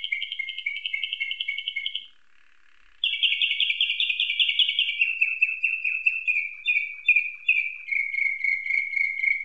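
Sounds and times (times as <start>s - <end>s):
canary tutored with nightingale song singing trills: 0.0s - 2.2s, 3.0s - 9.4s.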